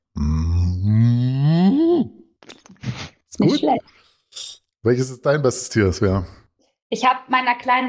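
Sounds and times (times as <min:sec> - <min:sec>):
person imitating a cow mooing: 0:00.1 - 0:02.2
speech: 0:03.4 - 0:07.8.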